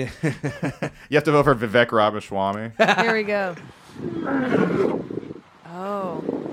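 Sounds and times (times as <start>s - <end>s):
laughter: 0.0s - 1.1s, 2.8s - 3.6s
speech: 0.0s - 6.5s
tiger yawning roar: 4.0s - 6.4s.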